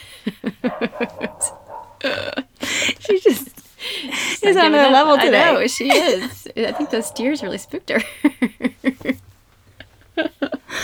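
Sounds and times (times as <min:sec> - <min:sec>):
laughter: 0:00.0 - 0:10.8
female dog barking and yipping: 0:00.6 - 0:02.2, 0:04.8 - 0:07.9
speech: 0:04.5 - 0:08.6.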